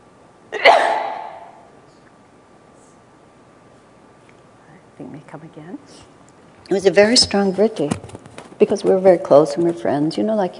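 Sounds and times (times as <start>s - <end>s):
person sneezing: 0.6s - 1.6s
speech: 5.0s - 10.5s.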